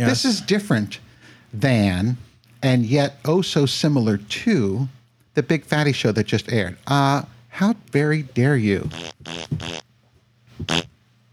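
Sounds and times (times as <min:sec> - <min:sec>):
speech: 0:00.0 - 0:09.8, 0:10.6 - 0:10.9
faint low hum: 0:00.0 - 0:11.3
fart noises: 0:08.8 - 0:09.8, 0:10.6 - 0:10.9.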